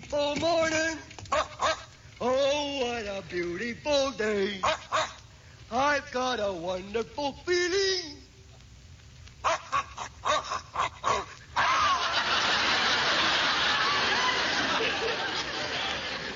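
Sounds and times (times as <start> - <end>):
speech: 0.1 - 1.1, 2.2 - 4.8, 5.7 - 8.1
sharp dog barks: 1.3 - 2.0, 4.6 - 5.3, 9.4 - 11.7
laughter: 9.5 - 16.3.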